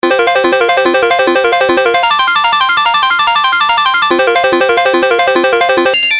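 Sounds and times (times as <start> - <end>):
arpeggiated chords: 0.0 - 6.1.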